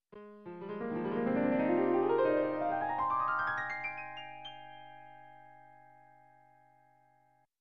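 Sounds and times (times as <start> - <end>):
elegant piano scale rising: 0.1 - 6.2.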